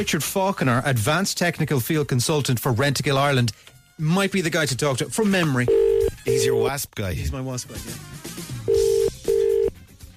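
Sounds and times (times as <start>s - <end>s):
speech: 0.0s - 9.0s
ringback tone on an outgoing phone call: 5.7s - 6.7s, 8.7s - 9.7s.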